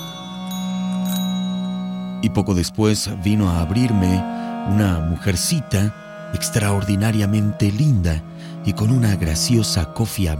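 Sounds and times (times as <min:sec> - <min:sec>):
house doorbell ringing, pulled by its handle: 0:00.0 - 0:02.2
speech: 0:02.2 - 0:10.3.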